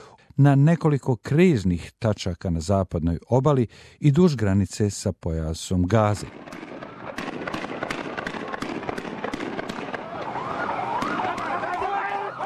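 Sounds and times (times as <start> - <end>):
speech: 0.4 - 6.6
gunfire during clashes between Palestinians and Israeli troops: 6.2 - 12.0
wailing siren: 9.2 - 12.4.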